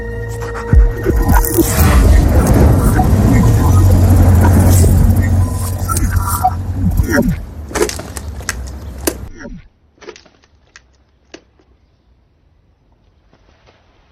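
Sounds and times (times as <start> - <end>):
car engine running with a low rumble: 0.8 - 8.9.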